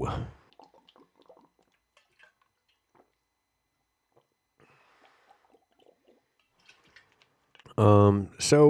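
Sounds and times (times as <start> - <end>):
water sipping: 0.4 - 3.2, 4.1 - 7.8
speech: 7.8 - 8.6.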